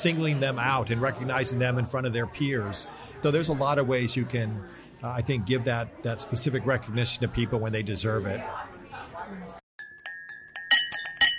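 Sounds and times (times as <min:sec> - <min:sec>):
speech: 0:00.0 - 0:08.7
glasses clinking for a holiday toast: 0:09.8 - 0:11.3.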